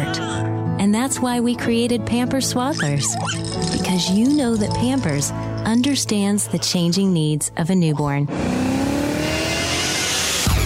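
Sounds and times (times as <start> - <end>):
speech: 0.8 - 8.8
BMW car with automatic transmission revving its engine: 8.3 - 10.6.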